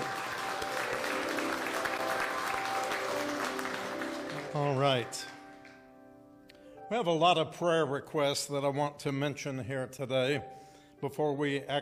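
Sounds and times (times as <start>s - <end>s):
church audience clapping hands: 0.0s - 5.9s
speech: 4.6s - 5.3s, 6.9s - 11.7s.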